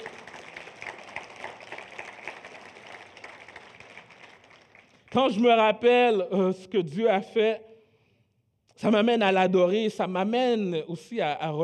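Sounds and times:
crowd applauding to praise God: 0:00.0 - 0:05.2
speech: 0:05.1 - 0:07.7, 0:08.8 - 0:11.6.

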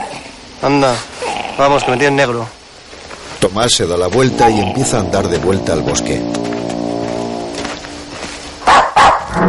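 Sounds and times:
speech: 0:00.6 - 0:02.6, 0:03.4 - 0:06.6
dog barking at a door: 0:08.6 - 0:09.3.

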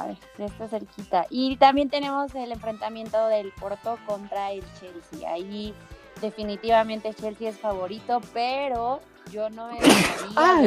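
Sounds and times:
speech: 0:00.0 - 0:10.6
person sneezing: 0:09.8 - 0:10.4.

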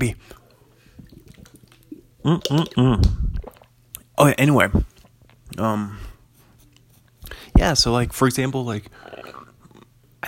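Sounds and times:
low hum: 0:00.0 - 0:10.2
person sipping ice-cold water: 0:00.3 - 0:04.1, 0:08.9 - 0:10.0
soft wet mouth and swallowing sounds: 0:00.4 - 0:04.1, 0:08.9 - 0:10.0
speech: 0:02.2 - 0:03.2, 0:04.2 - 0:04.9, 0:05.6 - 0:06.0, 0:07.6 - 0:09.0.

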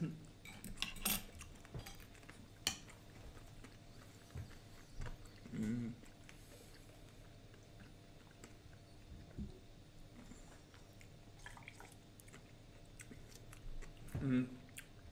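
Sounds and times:
low hum: 0:00.0 - 0:15.1
cutlery clinking against a plate: 0:00.4 - 0:03.0
person chewing curry pickled herring: 0:00.6 - 0:15.1
murmured voice: 0:05.4 - 0:06.1, 0:14.1 - 0:14.7.

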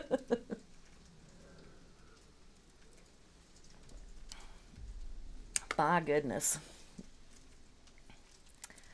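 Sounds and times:
hail drumming on a surface in Seattle: 0:00.0 - 0:08.9
speech: 0:00.1 - 0:00.6, 0:05.8 - 0:06.7
low rumble: 0:01.0 - 0:05.6.

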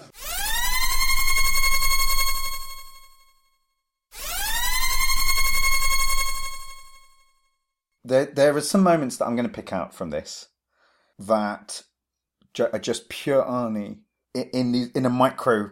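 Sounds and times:
klaxon-style siren sound effect blasts: 0:00.0 - 0:03.3, 0:04.1 - 0:07.2
speech: 0:08.1 - 0:10.5, 0:11.2 - 0:11.9, 0:12.6 - 0:15.7.

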